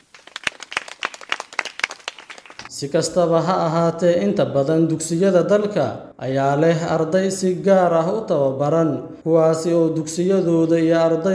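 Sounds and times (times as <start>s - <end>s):
scouts clapping: 0.0s - 2.7s
speech: 2.8s - 11.3s.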